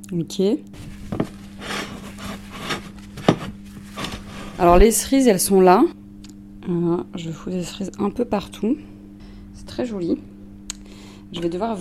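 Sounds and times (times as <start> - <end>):
speech: 0.1 - 1.0, 4.6 - 6.0, 6.7 - 8.9, 9.7 - 10.3, 11.3 - 11.7
butter rubbed onto a baking dish: 0.8 - 4.8.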